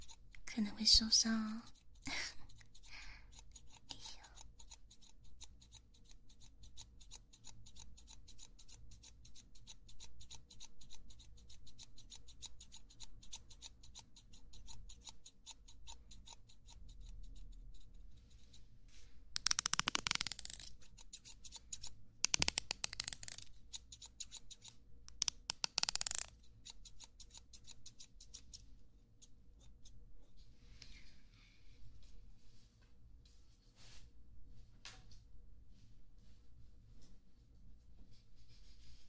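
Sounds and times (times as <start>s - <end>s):
speech: 0.6s - 2.2s
scissors trimming: 1.7s - 17.9s, 19.4s - 28.6s.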